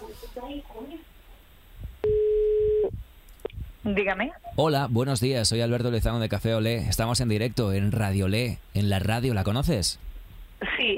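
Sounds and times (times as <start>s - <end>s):
speech: 0.4s - 1.1s, 3.8s - 10.1s
telephone ringing tone: 2.1s - 2.9s.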